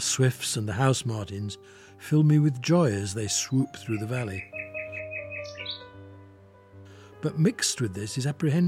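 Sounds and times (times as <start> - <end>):
speech: 0.0 - 4.6, 7.2 - 8.6
nightingale singing: 3.4 - 6.3.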